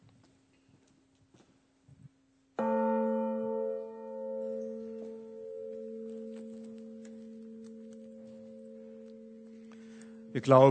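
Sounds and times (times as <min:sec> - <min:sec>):
large church bell struck once: 0:02.6 - 0:10.6
speech: 0:10.4 - 0:10.6.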